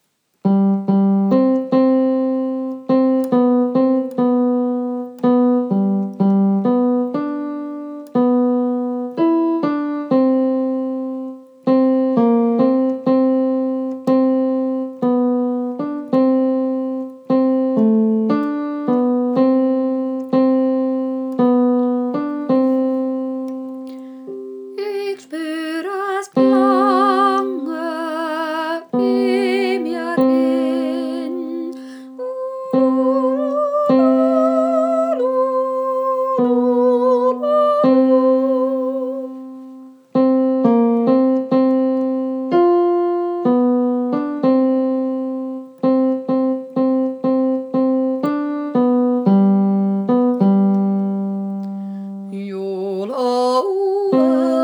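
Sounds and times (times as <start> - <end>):
piano: 0.0 - 54.6
tenor singing: 24.3 - 39.8, 52.3 - 54.6.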